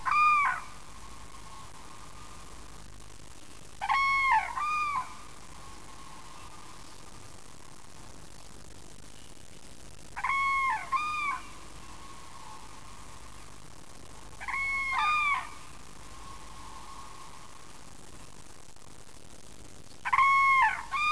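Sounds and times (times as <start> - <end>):
common crane Grus grus calling: 0.0 - 2.7, 3.8 - 6.8, 10.2 - 17.6, 20.0 - 21.1.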